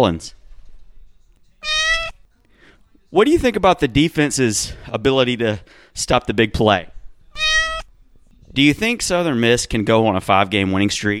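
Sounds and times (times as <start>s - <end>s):
speech: 0.0s - 0.4s, 3.1s - 6.9s, 8.5s - 11.1s
cat meowing: 1.4s - 2.3s, 7.3s - 8.0s.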